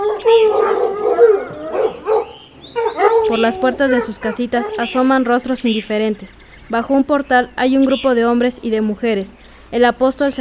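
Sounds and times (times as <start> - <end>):
village dogs barking and yelping in alarm at an arriving man: 0.0 - 5.4
speech: 3.3 - 10.3.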